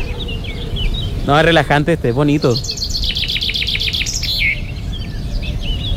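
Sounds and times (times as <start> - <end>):
birds singing in rapid chirps: 0.0 - 5.9
speech: 1.3 - 2.8.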